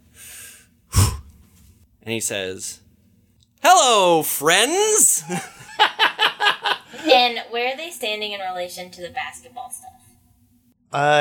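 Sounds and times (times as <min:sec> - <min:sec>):
deep breath in: 0:00.0 - 0:01.4
speech: 0:02.0 - 0:02.8, 0:03.6 - 0:05.6, 0:07.1 - 0:09.9, 0:10.9 - 0:11.1
laughter: 0:05.0 - 0:07.1.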